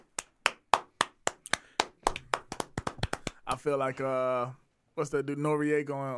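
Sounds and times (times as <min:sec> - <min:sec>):
hands clapping in an even steady rhythm: 0:00.0 - 0:03.7
speech: 0:03.5 - 0:06.1.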